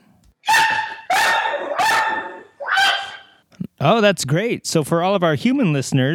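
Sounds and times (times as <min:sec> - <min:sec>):
dog barking with a whiny yelping tone: 0:00.4 - 0:03.4
speech: 0:03.8 - 0:06.1.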